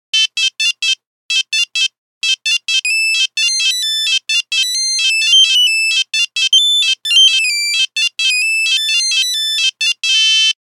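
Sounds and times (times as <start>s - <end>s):
phone buzzer: 0.2s - 10.6s.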